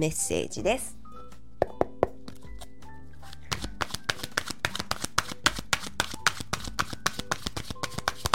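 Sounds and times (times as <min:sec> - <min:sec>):
speech: 0:00.0 - 0:01.0
deck of oracle cards shuffled and drawn: 0:03.3 - 0:08.3.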